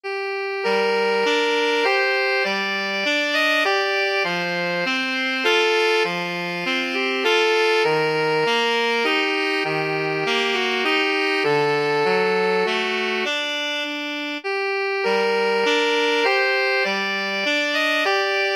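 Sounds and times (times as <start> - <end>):
alto saxophone duet: 0.0 - 18.5.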